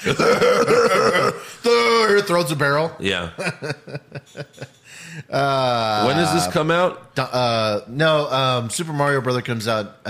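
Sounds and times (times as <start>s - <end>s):
speech: 0.0s - 0.5s, 2.3s - 10.0s
laughter: 0.0s - 1.4s, 3.4s - 6.6s
person imitating raspy coughing after smoking a joint: 0.0s - 1.5s.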